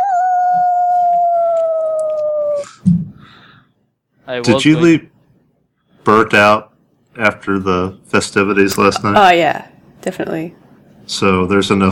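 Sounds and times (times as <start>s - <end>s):
white wolf howling: 0.0s - 2.8s
speech: 4.3s - 5.1s, 6.0s - 11.9s.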